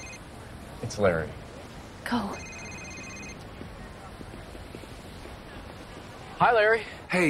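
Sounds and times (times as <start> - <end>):
mobile phone electronic ringtone: 0.0 - 0.2, 2.2 - 3.4
outdoor noise: 0.0 - 7.2
speech: 0.8 - 1.4, 2.1 - 2.5, 6.4 - 7.2.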